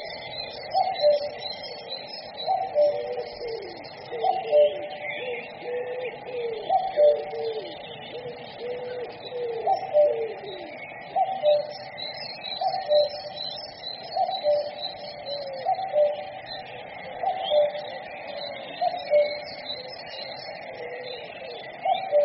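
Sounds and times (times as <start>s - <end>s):
background noise: 0.0s - 22.2s
common cuckoo calling: 0.0s - 22.2s.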